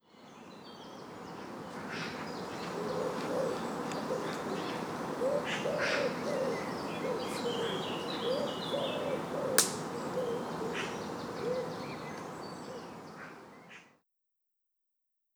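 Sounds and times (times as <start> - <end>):
jungle ambience: 0.2 - 13.7
branch snapping in a jungle: 9.6 - 9.9.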